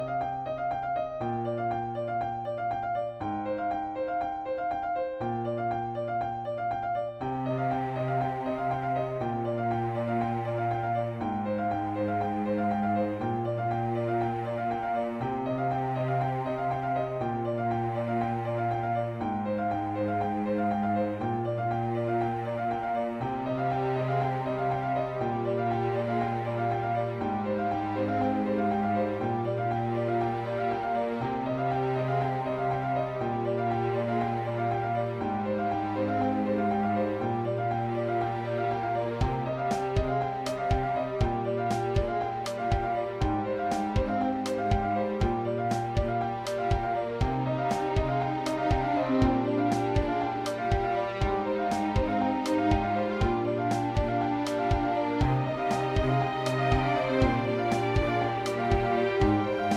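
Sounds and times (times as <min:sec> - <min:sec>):
piano in C minor: 0:00.0 - 0:59.7
strings in C minor: 0:07.2 - 0:59.7
percussion: 0:39.2 - 0:59.7.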